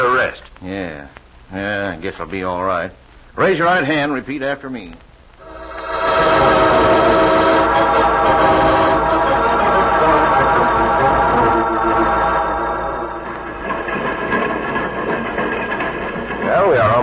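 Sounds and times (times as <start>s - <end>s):
speech: 0.0s - 5.1s
train rumbling with clatter and whine while slowing down: 5.4s - 17.0s.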